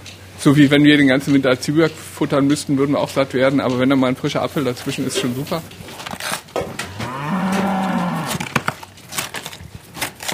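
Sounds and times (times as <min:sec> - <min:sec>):
cows chewing feed in a barn: 0:00.0 - 0:10.3
speech: 0:00.4 - 0:06.1
cow mooing long and low in a barn: 0:06.8 - 0:08.5.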